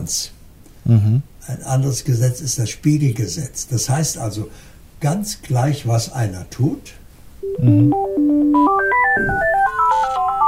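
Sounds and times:
speech: 0.0s - 10.0s
phone ringing with a bright electronic ringtone: 7.4s - 10.4s.

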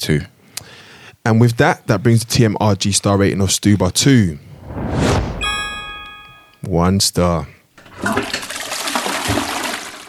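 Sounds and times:
speech: 0.0s - 0.3s, 1.2s - 5.2s, 6.7s - 8.4s
toilet flushing: 7.8s - 10.0s.

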